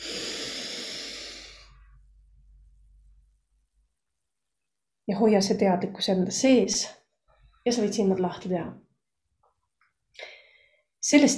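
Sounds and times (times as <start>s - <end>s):
strong deep breath in during a guided visualization exercise: 0.0s - 2.0s
speech: 5.1s - 7.0s, 7.6s - 8.8s, 11.0s - 11.3s.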